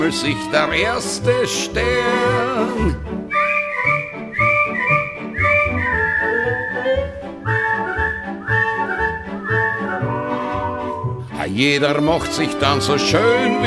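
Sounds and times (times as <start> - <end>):
speech: 0.0 - 3.4, 11.6 - 13.6
steady rhythmic instrumental accompaniment: 0.0 - 13.6
person whistling a bright lilting melody: 2.8 - 11.3.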